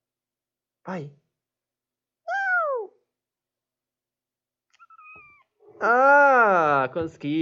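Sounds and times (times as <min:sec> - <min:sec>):
speech: 0:00.8 - 0:01.2, 0:05.8 - 0:07.4
cat meowing: 0:04.7 - 0:05.9.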